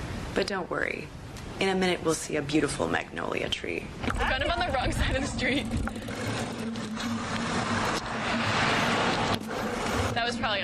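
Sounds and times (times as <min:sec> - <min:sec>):
speech: 0:00.4 - 0:06.3, 0:10.3 - 0:10.6
road noise: 0:04.0 - 0:10.6
pickup truck driving past on a street: 0:05.3 - 0:10.2.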